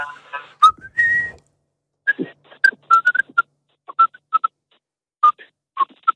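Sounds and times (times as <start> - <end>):
person whistling a short choppy tune: 0.6 - 1.4, 2.1 - 4.2.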